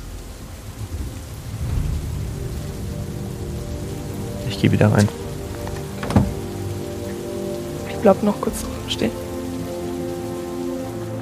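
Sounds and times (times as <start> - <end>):
steady rain pattering on a hard surface: 0.0 - 11.1
speech: 4.5 - 5.2, 8.0 - 9.2
louder drips and knocks: 4.9 - 7.2.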